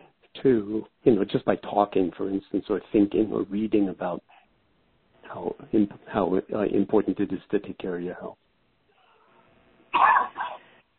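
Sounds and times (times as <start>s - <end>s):
speech: 0.4s - 4.3s, 5.3s - 8.4s
husky coughs: 10.0s - 10.7s.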